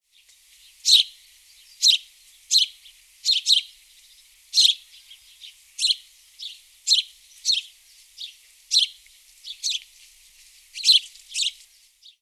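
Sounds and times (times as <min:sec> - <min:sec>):
house sparrow chirping: 0:00.8 - 0:03.7, 0:04.5 - 0:09.8, 0:10.8 - 0:12.2.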